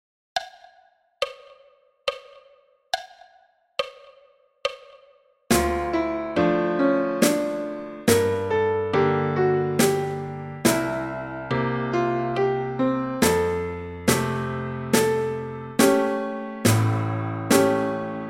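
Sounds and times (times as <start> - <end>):
drum: 0.4 - 6.1, 7.2 - 8.6, 9.8 - 11.1, 13.2 - 14.4, 15.0 - 18.0
piano: 5.5 - 18.2.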